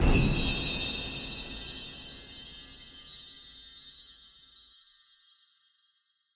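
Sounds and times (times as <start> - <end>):
Christmas chime burst: 0.0 - 4.0.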